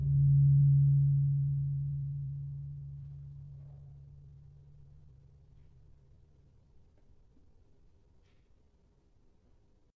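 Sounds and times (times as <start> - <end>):
tuned gravity harps: 0.0 - 4.1
gong D3: 0.0 - 5.9.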